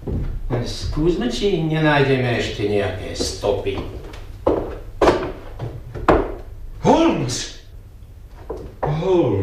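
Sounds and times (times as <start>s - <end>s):
heavy wooden thuds: 0.0s - 1.2s, 3.2s - 6.5s
speech: 0.6s - 4.0s, 7.3s - 7.6s.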